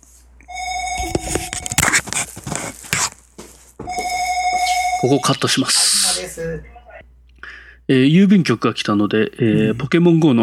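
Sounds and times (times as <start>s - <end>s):
electronic telephone ring: 0.5s - 1.8s, 3.9s - 5.7s
speech: 5.0s - 6.8s, 7.9s - 10.4s.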